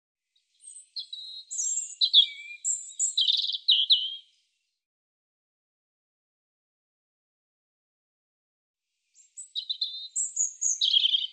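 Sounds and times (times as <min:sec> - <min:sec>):
European robin singing: 0:00.4 - 0:04.4, 0:09.1 - 0:11.3.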